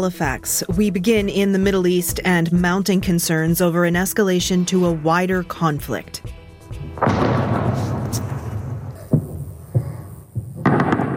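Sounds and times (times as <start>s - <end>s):
speech: 0.0s - 6.4s
long rolling boom of explosion near a military site in Isfahan: 6.8s - 11.1s.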